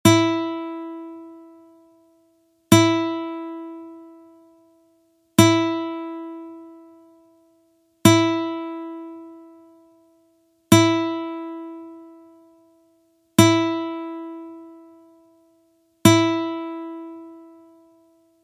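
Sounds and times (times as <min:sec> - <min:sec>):
classical guitar strings: 0:00.1 - 0:02.0, 0:02.7 - 0:04.8, 0:05.4 - 0:07.4, 0:08.0 - 0:10.1, 0:10.7 - 0:12.8, 0:13.4 - 0:18.4.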